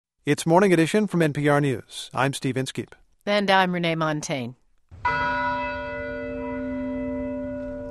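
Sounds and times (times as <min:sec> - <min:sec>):
speech: 0:00.2 - 0:05.4
deep church bell ringing in open air across a campus: 0:05.0 - 0:07.8.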